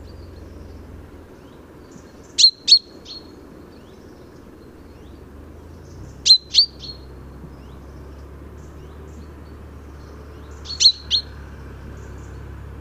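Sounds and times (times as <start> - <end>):
low steady background hum: 0.0 - 12.8
common chaffinch Fringilla coelebs calling in short high double notes: 2.4 - 3.3, 6.1 - 7.2, 10.6 - 11.4.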